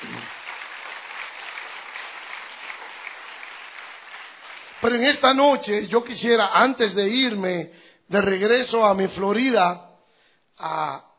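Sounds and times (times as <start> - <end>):
audience applause for guitar players at a live music show: 0.0 - 5.0
speech: 4.8 - 9.9, 10.6 - 11.1.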